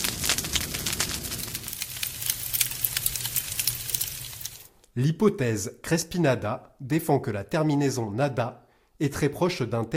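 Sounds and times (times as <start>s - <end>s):
fire crackling: 0.0s - 4.8s
speech: 5.0s - 9.9s.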